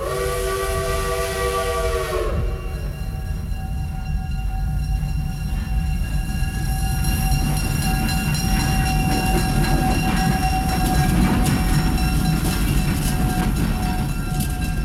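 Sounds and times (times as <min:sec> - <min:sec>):
American train's multi-tone horn blaring: 0:00.0 - 0:04.1
rail cars of an American train rumbling and rattling past: 0:00.0 - 0:14.8.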